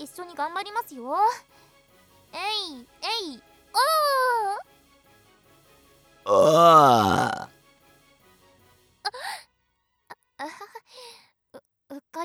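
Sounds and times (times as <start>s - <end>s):
speech: 0.0s - 1.7s, 2.3s - 4.7s, 6.2s - 7.5s
loud drawn-out burp: 6.3s - 7.5s.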